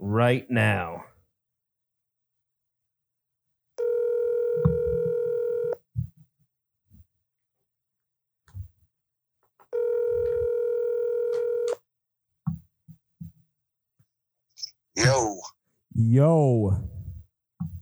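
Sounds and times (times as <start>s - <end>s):
speech: 0.1s - 1.1s, 15.0s - 16.9s
outgoing phone call ringback tone: 3.8s - 5.8s, 9.8s - 11.8s.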